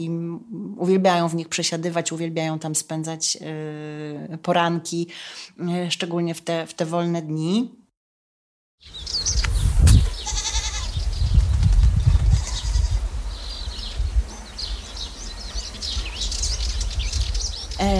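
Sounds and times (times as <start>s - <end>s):
speech: 0.0s - 7.8s
birds chirping and tweeting: 8.8s - 17.9s
goats bleating outdoors: 10.2s - 11.0s, 12.3s - 13.0s.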